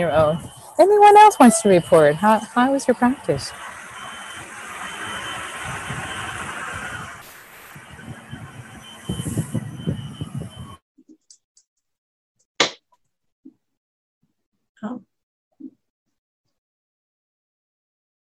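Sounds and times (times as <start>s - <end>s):
speech: 0.0s - 3.7s
fire truck passing outside: 0.0s - 10.8s.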